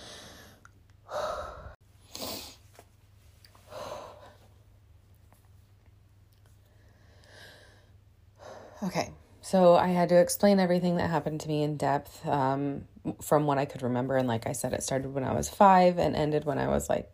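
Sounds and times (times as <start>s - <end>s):
emotional person taking sharp inhales and sighing exhales: 0.0s - 2.6s, 3.6s - 4.5s, 6.6s - 8.8s
speech: 8.8s - 17.1s.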